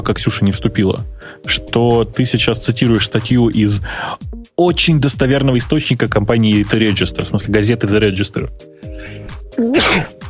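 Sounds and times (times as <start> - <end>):
speech: 0.0 - 10.2
person sneezing: 9.0 - 10.2.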